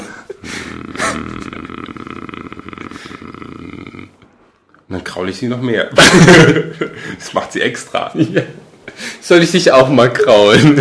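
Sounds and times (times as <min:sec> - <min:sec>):
person imitating a cat purr: 0:00.4 - 0:04.3
speech: 0:05.2 - 0:08.6, 0:09.3 - 0:10.7
laughter: 0:05.9 - 0:07.4.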